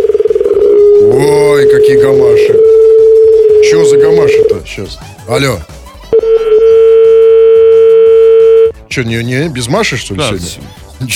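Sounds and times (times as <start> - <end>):
telephone dial tone: 0.0 - 4.6, 6.2 - 8.7
speech: 4.6 - 5.8, 9.0 - 11.1.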